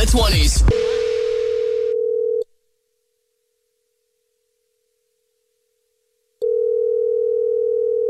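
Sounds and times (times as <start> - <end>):
speech: 0.1 - 1.0
telephone ringback tone of outgoing prank phone call: 0.7 - 2.4, 6.4 - 8.0.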